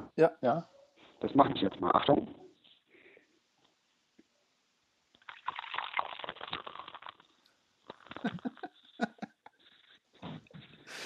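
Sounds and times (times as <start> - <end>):
speech: 0.2 - 2.4, 8.2 - 8.5
beer from a Bavarian bottle poured into a glass: 5.2 - 7.3
laughter: 8.2 - 9.4.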